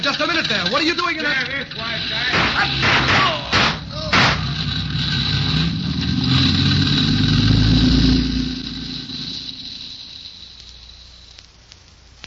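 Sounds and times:
speech: 0:00.0 - 0:03.5
car engine idling in alley: 0:00.0 - 0:11.6
sharp loud bang: 0:02.3 - 0:04.6.

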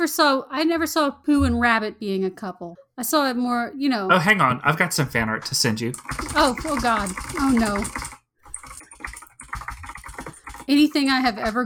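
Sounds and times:
speech: 0:00.0 - 0:08.2, 0:10.7 - 0:11.6
rapid typing on a computer keyboard: 0:05.8 - 0:11.6.

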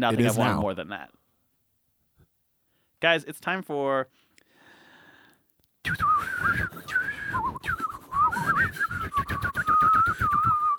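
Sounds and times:
speech: 0:00.0 - 0:01.2, 0:03.0 - 0:04.2, 0:05.8 - 0:07.8, 0:08.4 - 0:10.4
breathy blowing noise into a microphone: 0:04.3 - 0:05.4
people whistling a wavering high tune into a microphone: 0:05.8 - 0:10.7.

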